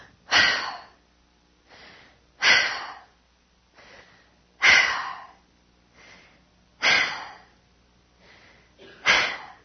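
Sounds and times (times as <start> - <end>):
rapid heavy breathing of a climber at high altitude: 0.0 - 1.0, 1.6 - 9.6.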